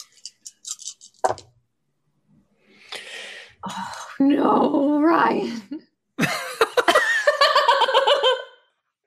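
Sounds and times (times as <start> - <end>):
five dice rattling as they are rolled: 0.0 - 1.4
speech: 4.2 - 5.8
laughter: 6.2 - 8.6.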